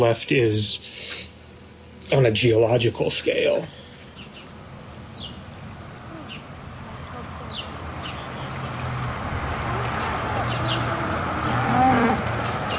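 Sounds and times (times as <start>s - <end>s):
speech: 0.0s - 1.3s, 2.1s - 3.8s
cattle mooing on a farm: 9.6s - 12.6s.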